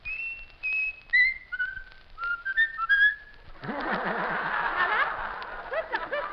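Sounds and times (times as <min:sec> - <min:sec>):
pet bird whistling a melody: 0:00.0 - 0:03.5
laughter: 0:03.6 - 0:06.3.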